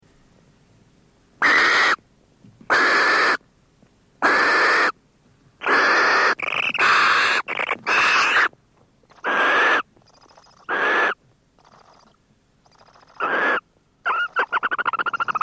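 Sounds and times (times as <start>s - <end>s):
barn owl call: 1.4s - 2.0s, 2.7s - 3.4s, 4.2s - 5.0s, 5.6s - 15.4s.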